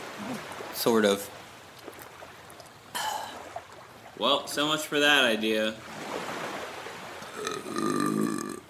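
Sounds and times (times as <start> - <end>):
speech: 0.2 - 1.4, 4.2 - 5.9
drawn-out gurgling wet burp: 7.3 - 8.6.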